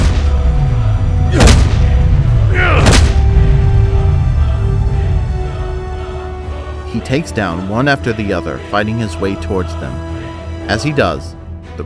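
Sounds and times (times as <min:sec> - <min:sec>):
booming energy blasts from glowing fists: 0:00.0 - 0:06.4
steady low rumble: 0:00.0 - 0:07.8
speech: 0:07.0 - 0:11.8.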